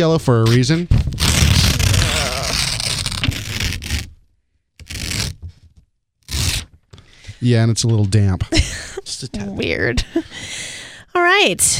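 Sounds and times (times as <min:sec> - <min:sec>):
speech: 0:00.0 - 0:01.1, 0:07.4 - 0:11.7
paper envelope torn open: 0:01.1 - 0:04.2, 0:04.8 - 0:05.4, 0:06.2 - 0:06.7.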